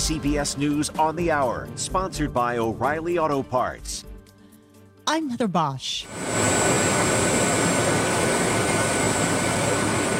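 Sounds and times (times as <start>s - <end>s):
speech: 0.1s - 4.1s, 5.1s - 6.6s
jet airplane landing: 6.0s - 10.1s.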